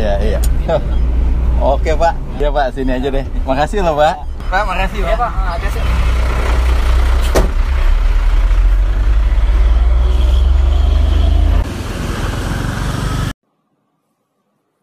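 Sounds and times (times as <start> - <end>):
speech: 0.3 - 6.2
garbage compactor truck engine rumbling: 4.1 - 13.3.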